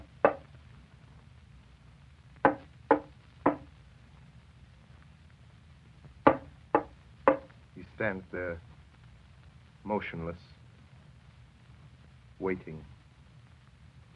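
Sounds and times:
faint low hum: 0.0 - 14.1
sharp wooden knocks on a door: 0.2 - 0.4, 2.4 - 3.7, 6.3 - 7.5
speech: 8.0 - 8.7, 9.9 - 10.5, 12.4 - 12.9.

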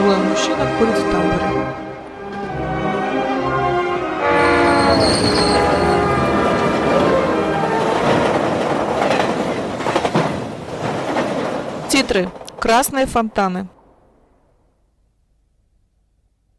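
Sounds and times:
passenger train in motion: 0.0 - 14.0
speech: 0.6 - 1.9, 12.2 - 13.8
rattling passenger train wheels: 4.3 - 13.9.

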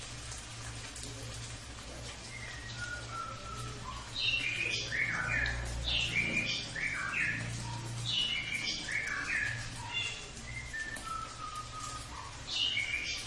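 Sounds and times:
cililin bird song with chirpy notes and slurred phrases: 2.3 - 13.2.

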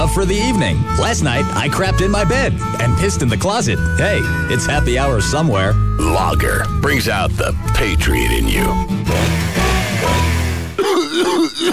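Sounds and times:
speech: 0.2 - 10.3, 11.2 - 11.7
loud raspy hacking cough with harsh throat-clearing: 10.8 - 11.7.

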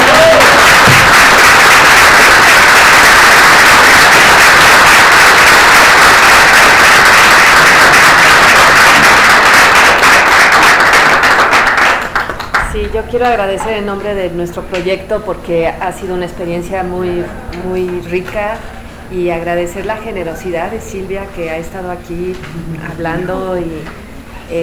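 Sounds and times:
audience applause at the close of a talk: 0.0 - 13.8
speech: 12.9 - 24.6.

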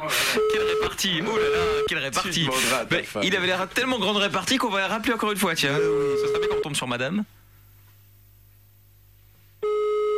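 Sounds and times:
telephone busy tone after a cut-off call: 0.4 - 1.9, 9.6 - 10.1
speech: 0.8 - 7.4.

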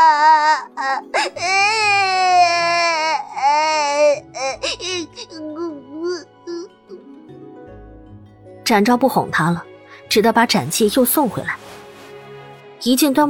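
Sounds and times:
infant crying while being held, kicking its legs: 0.0 - 7.2
speech: 8.7 - 11.6, 12.8 - 13.2.

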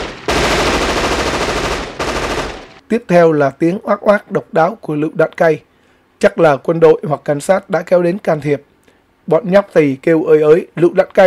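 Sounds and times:
submachine gun fired into the air as a warning over a dense crowd: 0.0 - 2.8
speech: 2.9 - 8.7, 9.3 - 11.2.

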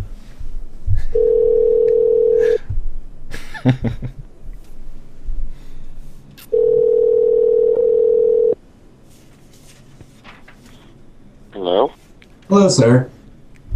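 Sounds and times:
steady telephone tone: 1.2 - 2.6, 6.5 - 8.6
clattering clicks and rustling from the phone: 1.7 - 2.2
laughter: 3.4 - 4.2
speech: 3.6 - 4.2, 12.5 - 13.1.

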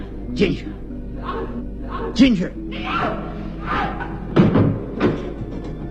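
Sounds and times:
speech: 0.4 - 3.9
door slamming shut: 4.3 - 5.8.

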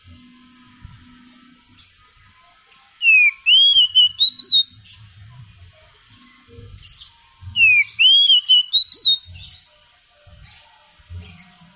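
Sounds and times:
oriental magpie-robin singing rich whistled phrases: 1.8 - 5.1, 6.8 - 9.7.

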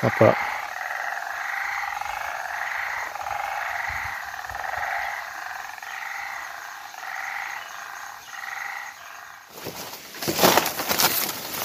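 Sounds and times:
frogs croaking in a rain-soaked forest on Mauritius: 0.0 - 11.6
rustling: 9.5 - 11.6.

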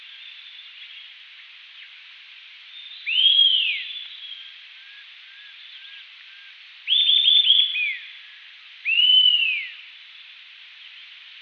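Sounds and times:
Eastern sirystes Sirystes sibilator calling: 2.9 - 8.1, 8.8 - 9.8.

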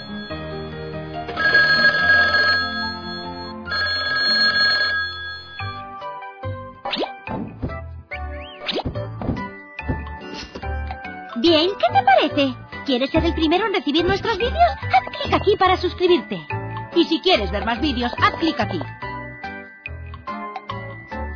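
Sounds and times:
telephone ringing: 0.0 - 5.9
quick cartoonish plops and boings: 6.9 - 7.7, 8.5 - 10.0
speech: 11.5 - 19.0.

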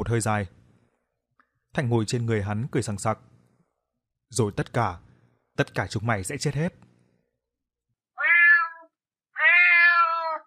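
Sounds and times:
speech: 0.0 - 0.6, 1.8 - 3.3, 4.3 - 6.9
large black cat meowing: 8.2 - 10.4.

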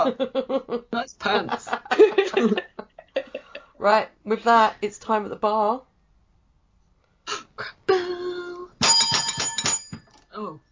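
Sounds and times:
speech: 0.0 - 2.6, 3.9 - 5.9
plunger bell ringing: 8.8 - 10.2.

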